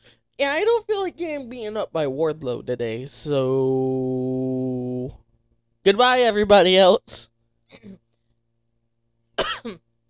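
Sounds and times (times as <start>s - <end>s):
speech: 0.4s - 5.2s, 5.8s - 8.0s, 9.6s - 9.8s
person recovering from the flu coughing: 9.4s - 9.9s.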